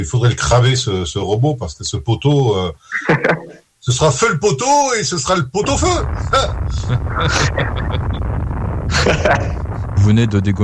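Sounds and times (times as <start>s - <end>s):
speech: 0.0s - 8.1s, 9.0s - 10.6s
laughter: 2.9s - 3.6s, 6.7s - 8.2s, 8.9s - 9.6s
crackling pops: 5.6s - 10.6s
explosion sound effect with continuous roaring rumble: 5.6s - 10.6s.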